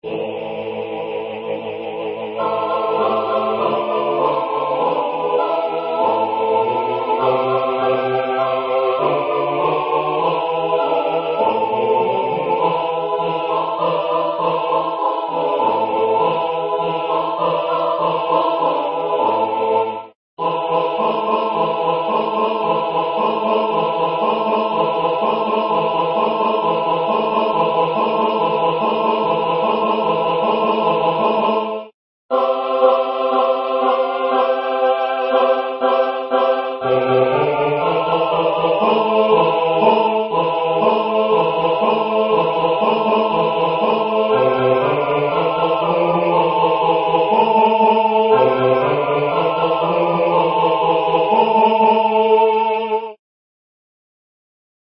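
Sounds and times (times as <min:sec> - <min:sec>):
choir singing: 0:00.0 - 0:53.2.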